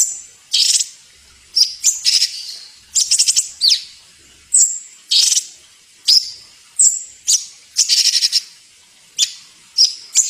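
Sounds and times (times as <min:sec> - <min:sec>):
songbird masteran song with squeaky chattering and sharp chirps: 0:00.0 - 0:00.9, 0:01.6 - 0:03.9, 0:04.5 - 0:05.5, 0:06.1 - 0:08.5, 0:09.2 - 0:10.2.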